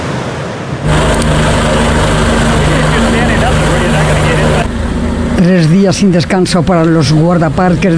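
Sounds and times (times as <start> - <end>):
rescue helicopter flying overhead at Grand Canyon National Park during flash floods: 0.0 - 5.4
speech: 5.4 - 7.9.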